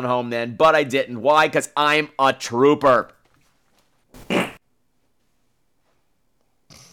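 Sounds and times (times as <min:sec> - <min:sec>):
speech: 0:00.0 - 0:03.2
fart: 0:04.2 - 0:04.6, 0:06.7 - 0:06.9.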